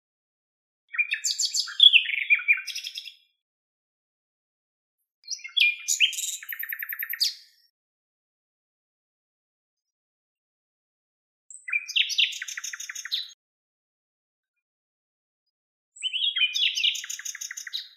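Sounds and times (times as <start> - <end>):
common nightingale Luscinia megarhynchos singing: 0.9 - 3.4, 5.2 - 7.7, 11.5 - 13.4, 16.0 - 17.9.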